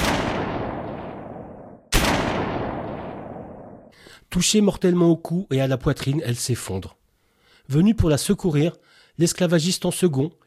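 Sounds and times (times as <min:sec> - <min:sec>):
pistol shots: 0:00.0 - 0:03.9
speech: 0:04.3 - 0:07.0, 0:07.7 - 0:10.4.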